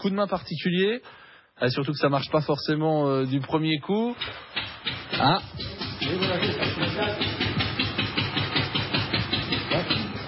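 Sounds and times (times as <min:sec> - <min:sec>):
speech: 0:00.0 - 0:07.3
old hand-cranked engine chugging at a museum of old trades in Lignières-Orgères: 0:04.2 - 0:10.2.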